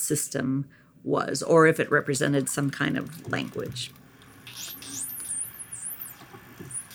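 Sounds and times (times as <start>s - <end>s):
speech: 0.1s - 4.0s
dolphins communicating with squeaks and whistles: 4.5s - 6.9s.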